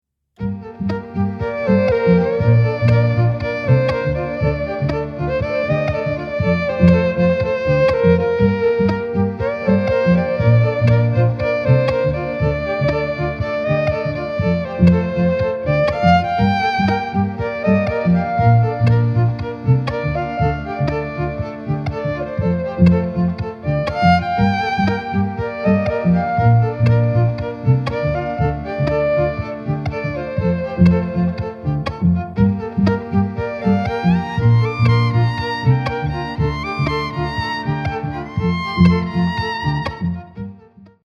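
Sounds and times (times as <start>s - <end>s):
solo electric violin: 0.4s - 41.0s.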